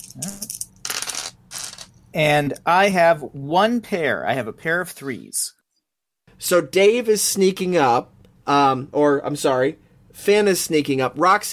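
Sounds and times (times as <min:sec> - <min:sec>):
three dice rolled on a hard surface in a tabletop game: 0:00.0 - 0:01.9
speech: 0:00.2 - 0:00.4, 0:02.1 - 0:05.6, 0:06.4 - 0:11.5.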